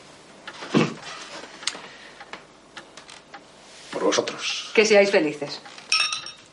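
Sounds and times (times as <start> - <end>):
speech: 4.1 - 5.8
glasses clinking in a toast: 5.8 - 6.5.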